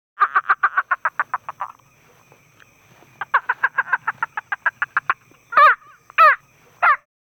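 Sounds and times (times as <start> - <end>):
toucan bird calls: 0.2 - 7.1.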